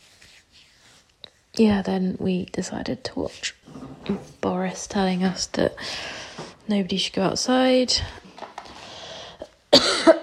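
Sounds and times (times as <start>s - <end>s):
speech: 1.6s - 8.2s
sharp loud coughs: 9.7s - 10.2s.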